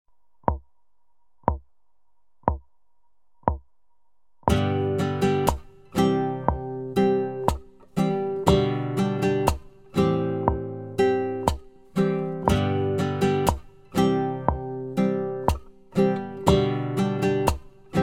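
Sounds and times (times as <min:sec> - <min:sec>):
strumming: 0:04.5 - 0:18.0.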